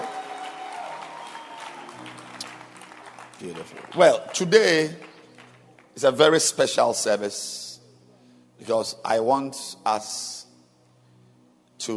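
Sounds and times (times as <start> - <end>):
audience clapping: 0.0 - 6.3
speech: 3.4 - 5.1, 6.0 - 7.6, 8.6 - 10.4.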